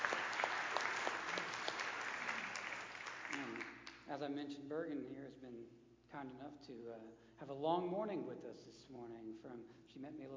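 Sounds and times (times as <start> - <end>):
audience applause: 0.0 - 3.9
speech: 3.4 - 10.3.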